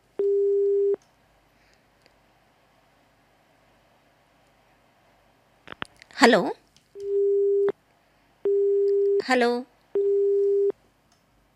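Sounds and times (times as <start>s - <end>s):
faint phone line hiss: 0.1s - 11.4s
phone busy tone after a call is disconnected: 0.2s - 1.0s, 7.0s - 7.7s, 8.5s - 9.2s, 10.0s - 10.7s
speech: 6.2s - 6.6s, 9.3s - 9.7s.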